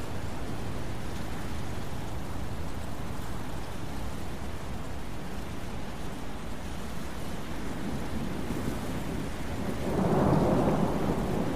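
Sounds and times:
rain: 0.0 - 11.5
wind: 0.0 - 11.5
thunder rumble: 7.7 - 11.5.

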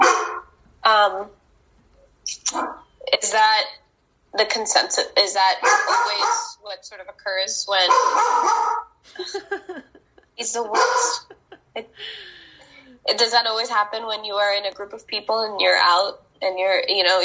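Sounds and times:
dog barking: 0.0 - 0.5, 5.6 - 6.6, 7.9 - 8.9, 10.7 - 11.4
speech: 1.0 - 1.4, 2.3 - 12.4, 13.0 - 17.2
laughter: 9.1 - 12.5.

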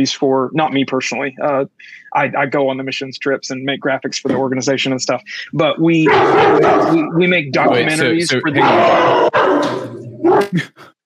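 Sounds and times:
speech: 0.0 - 10.9
dog short yelping barks: 6.1 - 7.0, 8.6 - 10.5
dog growl-like howl: 6.1 - 7.1, 7.8 - 10.5.

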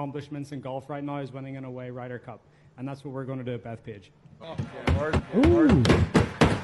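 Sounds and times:
speech: 0.0 - 6.3
teammates pounding on a table or surface: 4.6 - 6.6.

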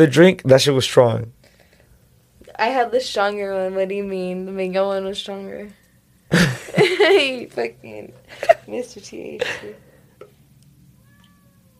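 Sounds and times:
speech: 0.0 - 1.4, 2.6 - 9.9
cat meowing: 11.0 - 11.7.

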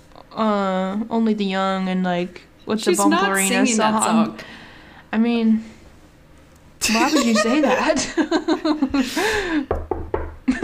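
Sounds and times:
speech: 0.4 - 5.8, 6.8 - 9.9
laughter: 6.8 - 9.6
knuckles knocking on wood: 9.7 - 10.4.

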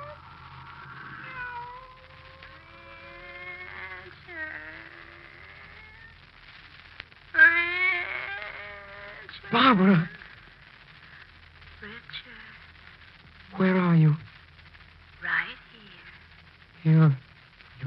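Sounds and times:
cat meowing in long wavering cries: 0.0 - 6.1, 7.3 - 10.2
low hum: 0.0 - 17.8
speech: 9.5 - 10.2.

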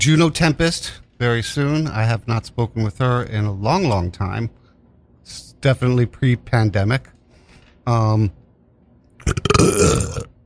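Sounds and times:
speech: 0.0 - 4.6, 5.3 - 7.2, 7.9 - 8.4, 9.2 - 10.3
loud voiced burp: 9.2 - 10.4.

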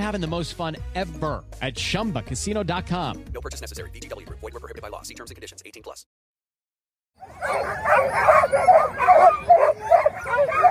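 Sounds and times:
speech: 0.0 - 6.2, 7.2 - 10.6
sled dogs barking, yipping and whining at the start of a long-distance sled dog race in Anchorage: 7.2 - 10.6.

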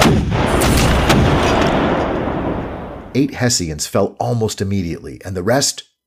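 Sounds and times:
American cannon fire in battle aimed at Hessian artillery: 0.0 - 3.1
speech: 3.2 - 6.0.

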